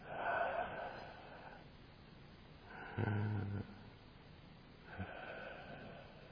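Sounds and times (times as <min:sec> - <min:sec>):
person deliberately breathing in and out audibly: 0:00.0 - 0:01.7, 0:04.9 - 0:06.3.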